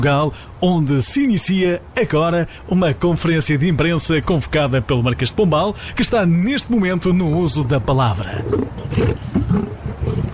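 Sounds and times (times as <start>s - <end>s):
speech: 0.0s - 9.2s
lion roaring: 8.4s - 10.3s.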